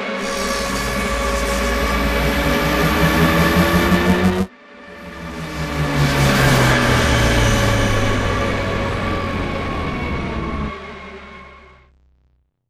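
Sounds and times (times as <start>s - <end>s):
minor pulse build: 0.2s - 11.8s.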